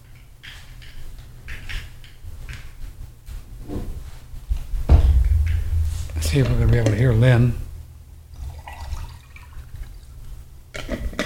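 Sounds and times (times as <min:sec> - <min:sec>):
low rumble: 0:04.8 - 0:08.5
speech: 0:06.3 - 0:07.6
water poured in a steady splashy stream: 0:08.3 - 0:10.2.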